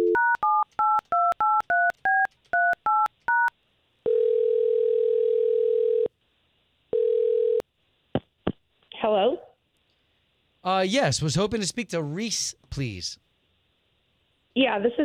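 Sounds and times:
long steady phone-line tone: 0.0s - 0.5s, 4.1s - 6.1s, 7.0s - 7.6s
touch-tone beeps dialing a woman's phone number: 0.0s - 3.5s
speech: 9.1s - 9.4s, 10.6s - 13.2s, 14.6s - 15.0s.

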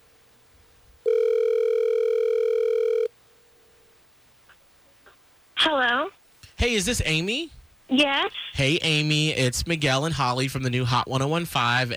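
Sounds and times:
electronic phone ringing tone as a call is placed: 1.1s - 3.1s
speech: 5.6s - 11.9s.

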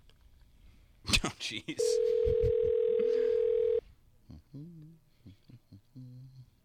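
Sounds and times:
speech: 1.2s - 2.6s
electronic ringback tone on an outgoing phone call: 1.8s - 3.8s
voicemail greeting voice over the phone line: 1.8s - 3.8s.

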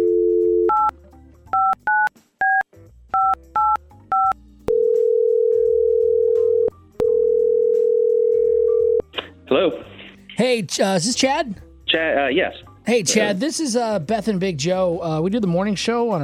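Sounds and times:
phone line dial tone: 0.0s - 0.9s, 3.2s - 9.1s
phone keypad beeps: 0.6s - 0.9s, 3.2s - 4.4s
speech: 9.5s - 16.2s.

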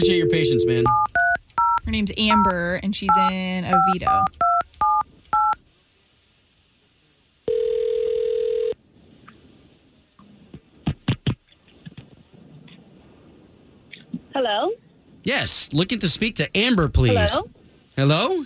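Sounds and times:
speech: 0.0s - 1.2s, 1.9s - 4.4s, 14.4s - 18.4s
long steady mid-pitched telephone tone: 0.0s - 2.5s, 7.5s - 8.8s
touch-tone beeps of a telephone number being dialed: 0.0s - 5.6s.

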